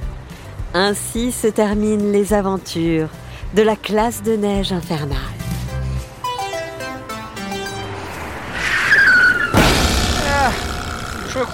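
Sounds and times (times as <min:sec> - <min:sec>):
light music: 0:00.0 - 0:08.3
speech: 0:00.7 - 0:05.4, 0:11.4 - 0:11.5
rising squeal: 0:06.9 - 0:11.5
screeching skid of a bus sliding to a stop: 0:07.5 - 0:11.5
loud bang of a bus tire bursting: 0:08.5 - 0:11.5.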